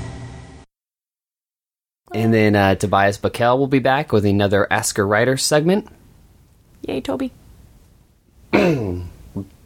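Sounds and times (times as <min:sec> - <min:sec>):
speech: 0:02.2 - 0:06.0, 0:06.8 - 0:07.4, 0:08.5 - 0:09.5
person clearing throat with a gurgling regurgitating sound: 0:08.5 - 0:09.5
person grunting: 0:08.5 - 0:09.5.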